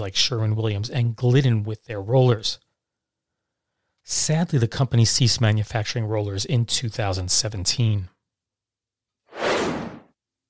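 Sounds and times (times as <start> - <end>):
speech: 0.0 - 2.6, 4.0 - 8.1
airy whoosh sound effect: 9.3 - 10.1.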